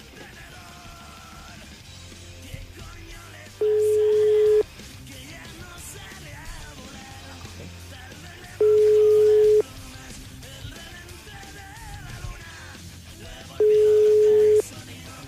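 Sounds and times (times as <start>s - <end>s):
telephone call tones from a call that fails to connect: 3.6s - 4.7s, 8.5s - 9.7s, 13.6s - 14.7s.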